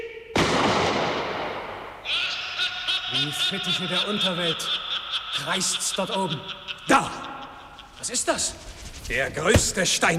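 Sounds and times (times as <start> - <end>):
rifle shot: 0.4 - 2.0
laughter: 2.0 - 10.1
speech: 3.2 - 7.2, 8.0 - 10.1.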